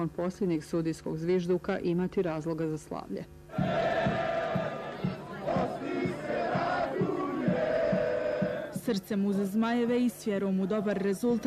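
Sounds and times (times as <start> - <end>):
speech: 0.0 - 4.2, 8.9 - 11.4
large crowd of football fans chanting outdoors in the streets: 3.5 - 8.8, 10.4 - 11.4
beats: 3.5 - 9.1.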